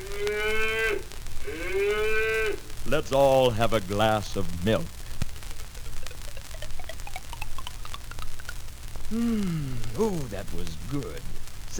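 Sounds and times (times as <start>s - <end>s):
cow mooing in a barnyard: 0.0s - 3.3s
speech: 2.9s - 5.0s, 9.1s - 11.7s.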